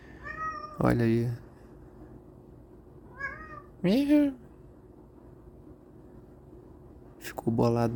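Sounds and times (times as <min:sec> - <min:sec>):
cat meowing: 0:00.2 - 0:01.0, 0:03.1 - 0:03.8
speech: 0:00.8 - 0:01.4, 0:03.8 - 0:04.4, 0:07.3 - 0:07.9.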